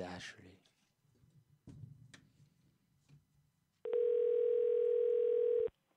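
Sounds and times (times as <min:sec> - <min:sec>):
speech: 0:00.0 - 0:00.7
electronic telephone ringing tone while a call is placed to an engraving shop: 0:03.9 - 0:05.7.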